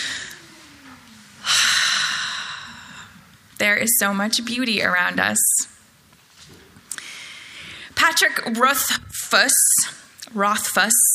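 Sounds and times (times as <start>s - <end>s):
deep breath drawn in: 1.4s - 3.3s, 6.9s - 8.0s
speech: 3.6s - 5.7s, 8.1s - 9.7s, 10.3s - 11.0s.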